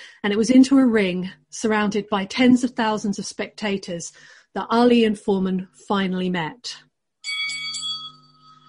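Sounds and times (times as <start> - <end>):
speech: 0.2 - 6.9
boxing ring bell clanging: 7.2 - 8.6.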